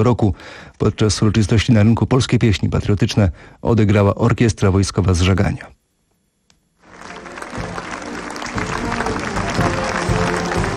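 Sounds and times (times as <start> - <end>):
speech: 0.0 - 5.8
townspeople applauding at a liberation anniversary ceremony in a market square: 6.8 - 10.7.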